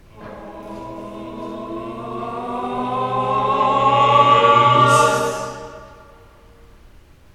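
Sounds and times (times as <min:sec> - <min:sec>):
vocal crescendo: 0:00.0 - 0:06.6.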